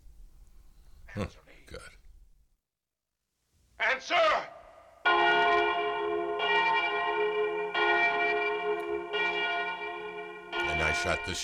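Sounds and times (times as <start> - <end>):
speech: 1.2 - 2.0, 4.0 - 4.5, 11.0 - 11.4
church bell striking in a bell tower: 5.0 - 11.4.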